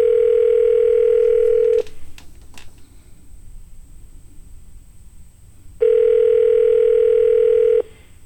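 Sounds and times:
telephone ringback tone on a call line: 0.0s - 1.9s, 5.8s - 7.9s.

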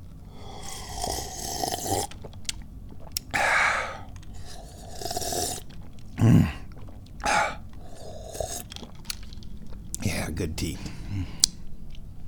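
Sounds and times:
breathy slurping sips of hot tea: 0.3s - 2.3s, 3.0s - 9.3s
speech: 6.2s - 6.6s, 10.4s - 11.4s
person speaking quietly: 10.0s - 11.4s.

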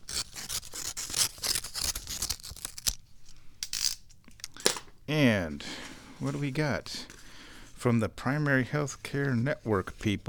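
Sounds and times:
utility knife slicing open a paper envelope: 0.0s - 3.0s
speech: 5.1s - 7.1s, 7.8s - 10.2s.

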